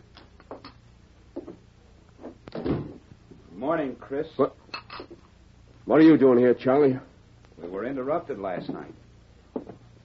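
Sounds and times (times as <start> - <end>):
door opening and closing: 2.5 - 3.1
heavy thud of a door shutting: 2.6 - 3.0
speech: 3.6 - 4.6, 5.9 - 7.1, 7.7 - 9.0.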